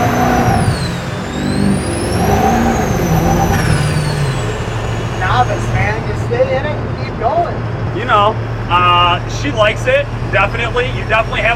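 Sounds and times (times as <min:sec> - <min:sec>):
high whine sweeping up and down: 0:00.0 - 0:07.1
800-horsepower dirt-drag truck engine roaring and revving as it launches: 0:00.0 - 0:11.5
speech: 0:09.6 - 0:11.5.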